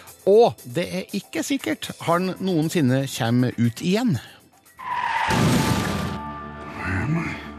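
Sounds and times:
speech: 0.2s - 5.6s
car crash: 5.2s - 6.2s.

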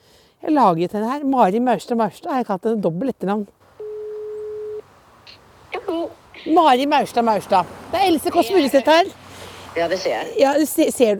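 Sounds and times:
speech: 0.5s - 3.6s, 6.0s - 9.2s, 9.8s - 11.1s
telephone ringback tone while a call is placed: 3.8s - 4.8s.

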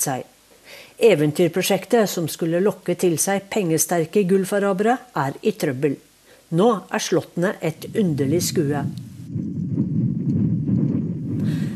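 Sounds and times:
speech: 0.0s - 9.4s
wind blowing through a valley of small castle-style houses in an empty village: 7.4s - 11.7s.

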